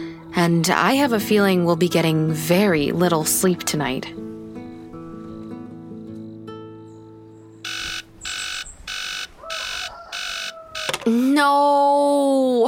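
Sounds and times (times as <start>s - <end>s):
speech: 0.4s - 4.3s, 11.4s - 11.9s
alarm clock beeping: 7.6s - 11.0s.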